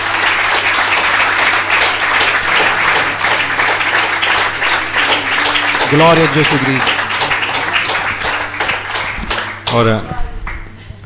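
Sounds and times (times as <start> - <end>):
wedding audience applauding newlyweds: 0.0 - 10.8
speech: 5.9 - 7.0, 9.7 - 10.3.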